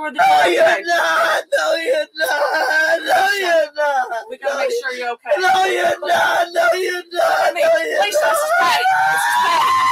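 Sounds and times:
speech: 0:00.0 - 0:09.9
person screaming: 0:00.4 - 0:04.0, 0:07.3 - 0:09.9.

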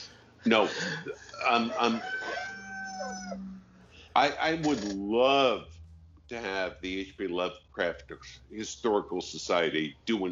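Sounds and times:
speech: 0:00.4 - 0:02.4, 0:03.0 - 0:03.6, 0:04.2 - 0:05.7, 0:06.3 - 0:10.3
laughter: 0:00.5 - 0:02.1
rooster crowing: 0:01.4 - 0:03.5.

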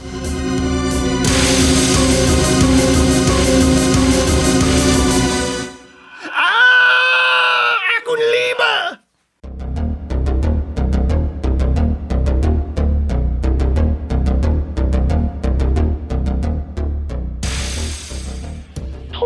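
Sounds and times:
dense loud music: 0:00.0 - 0:06.0, 0:09.5 - 0:19.1
eerie wavering ghostly scream: 0:06.0 - 0:07.8.

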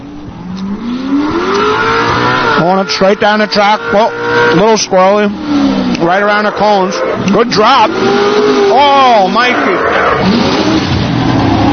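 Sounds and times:
race car engine revving at a competition: 0:00.0 - 0:11.7
speech: 0:02.9 - 0:10.6.

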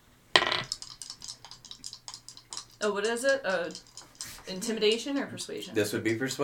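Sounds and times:
dice rolling on a table in a tabletop role-playing game: 0:00.4 - 0:05.4
speech: 0:02.8 - 0:03.9, 0:04.5 - 0:06.4.

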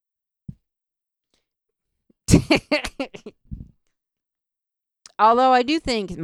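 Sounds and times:
speech: 0:02.3 - 0:03.4, 0:05.2 - 0:06.2
microphone being fitted into a difficult-to-use mic stand: 0:03.5 - 0:03.8.

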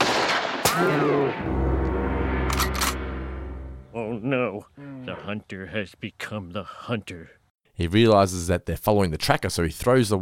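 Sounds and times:
single sharp gunshot: 0:00.0 - 0:01.4
steady low rumble: 0:01.4 - 0:04.2
speech: 0:04.2 - 0:10.2.

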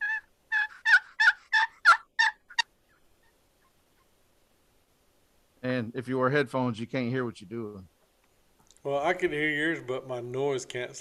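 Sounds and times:
wooden turkey box call yelps, side squeezed to soften it: 0:00.0 - 0:04.1
speech: 0:05.6 - 0:07.9, 0:08.8 - 0:10.9.

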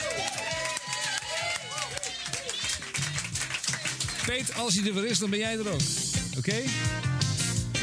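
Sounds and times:
crowd cheering and whooping: 0:00.0 - 0:03.0
crowd applauding: 0:00.0 - 0:05.8
speech: 0:04.3 - 0:07.2.

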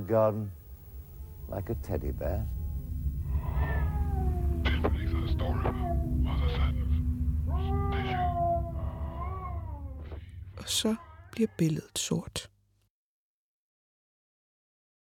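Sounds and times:
speech: 0:00.0 - 0:00.6, 0:01.5 - 0:02.6, 0:10.6 - 0:12.5
steady low rumble: 0:00.5 - 0:10.6
several distant cats yowling and wailing: 0:02.6 - 0:06.8, 0:07.5 - 0:10.3.

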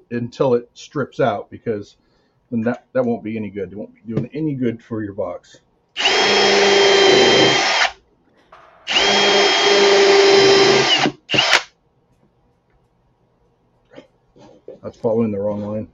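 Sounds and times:
speech: 0:00.1 - 0:07.8, 0:14.8 - 0:15.9
power drill drilling into wood: 0:06.0 - 0:08.0, 0:08.9 - 0:11.7.

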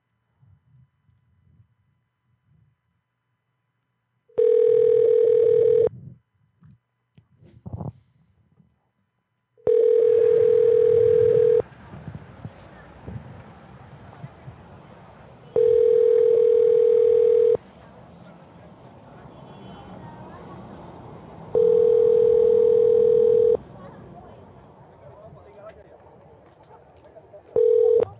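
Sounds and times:
phone ringback tone of an unanswered call: 0:04.4 - 0:05.9, 0:09.6 - 0:11.6, 0:15.6 - 0:17.6, 0:21.5 - 0:23.6, 0:27.6 - 0:28.1.

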